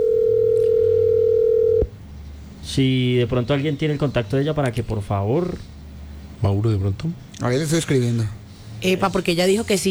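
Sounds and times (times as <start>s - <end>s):
steady telephone ringing tone retrying a call: 0.0s - 1.9s
speech: 2.8s - 5.8s, 6.4s - 9.8s.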